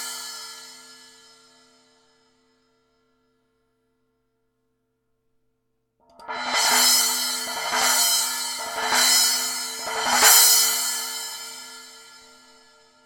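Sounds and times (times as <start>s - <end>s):
Sound Formula Reflector 10 splash cymbal: 6.2s - 11.9s.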